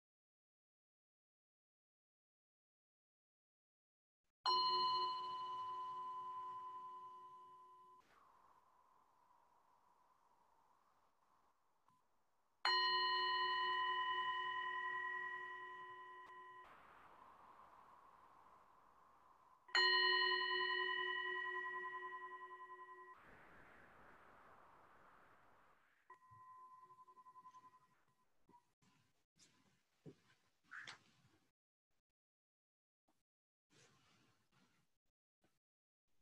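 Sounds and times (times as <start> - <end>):
meditation bell struck during mindfulness-of-breathing practice: 4.5 - 8.0, 12.7 - 16.7, 19.7 - 23.2.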